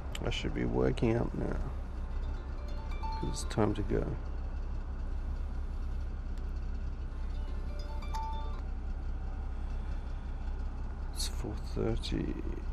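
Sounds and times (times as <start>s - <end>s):
big diesel road train truck engine idling: 0.0s - 12.7s
speech: 0.3s - 1.8s, 3.2s - 4.3s, 11.4s - 12.7s
faint high beeping tones: 1.0s - 10.3s.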